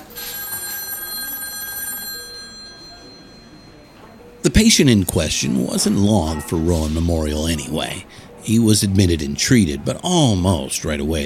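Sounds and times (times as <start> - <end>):
telephone bell ringing with a metallic trill: 0.0 - 4.0
speech: 4.4 - 11.2.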